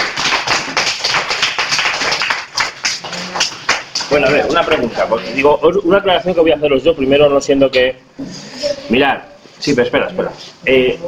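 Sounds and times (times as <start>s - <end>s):
crowd applauding: 0.0s - 4.9s
speech: 4.2s - 11.0s.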